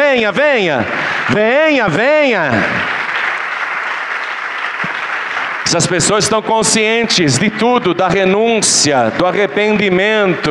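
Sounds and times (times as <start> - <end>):
congregation applauding at a church service: 0.0 - 7.8
speech: 0.1 - 2.9, 5.7 - 10.4.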